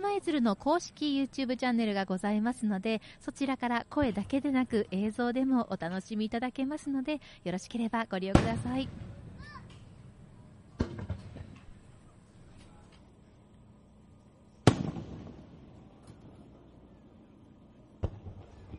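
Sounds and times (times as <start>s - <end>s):
speech: 0.0s - 9.2s
loud firework explosions at a festival: 8.4s - 11.8s, 14.6s - 16.7s, 18.0s - 18.7s.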